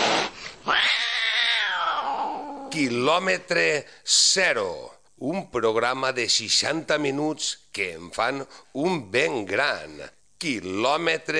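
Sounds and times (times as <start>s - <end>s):
burst of harsh noise: 0.0s - 0.8s
cat yowling: 0.6s - 2.7s
speech: 2.7s - 11.3s.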